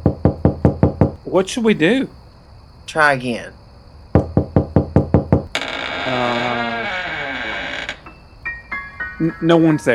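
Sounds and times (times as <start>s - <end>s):
knocking on a door: 0.0s - 1.2s, 4.1s - 5.6s
speech: 1.3s - 2.2s, 2.9s - 3.6s, 9.2s - 9.9s
long creaking groan: 5.5s - 8.2s
faint tonal squeaks: 5.5s - 9.0s.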